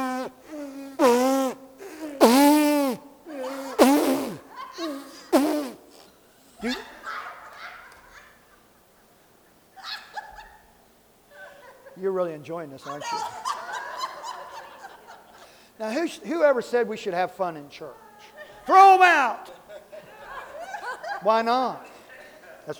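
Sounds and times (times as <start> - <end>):
church group buzzing their lips: 0.0 - 7.0
laughter: 3.3 - 5.3, 6.6 - 9.1, 9.8 - 10.7, 11.3 - 12.0, 12.8 - 15.6, 18.0 - 22.7
speech: 12.2 - 13.4, 15.8 - 18.0, 18.7 - 19.5, 21.2 - 21.9.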